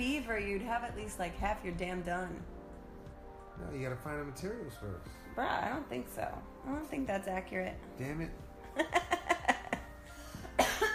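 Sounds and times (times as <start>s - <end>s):
speech: 0.0s - 2.6s, 3.6s - 9.2s
harsh coughs: 10.4s - 10.9s.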